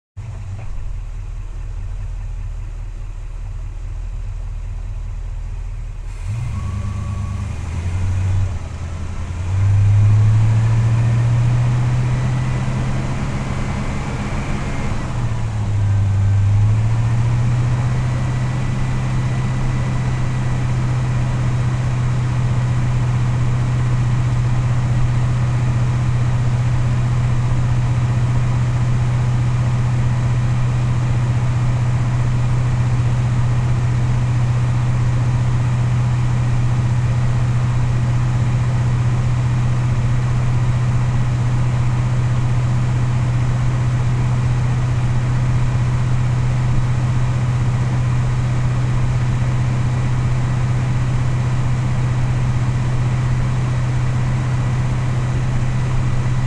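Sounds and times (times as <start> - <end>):
1967 Pontiac GTO engine at steady RPMs onboard while driving: 0.2 - 56.4.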